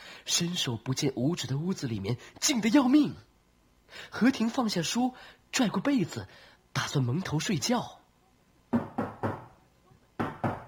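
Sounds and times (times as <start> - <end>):
speech: 0.2 - 3.3, 3.9 - 8.0
knocking on a courtyard gate: 8.7 - 9.5, 10.2 - 10.6.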